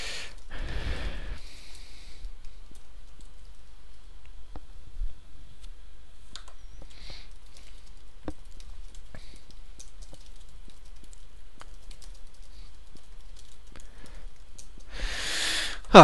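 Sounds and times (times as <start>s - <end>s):
faint low hum: 0.0s - 16.0s
typing on a computer keyboard: 1.6s - 3.7s, 6.3s - 14.9s.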